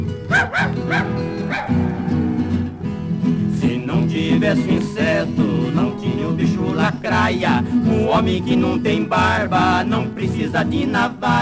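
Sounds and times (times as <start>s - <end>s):
stringed music: 0.0s - 11.3s
speech: 0.3s - 1.7s, 4.4s - 11.3s
dog barking: 0.3s - 2.3s.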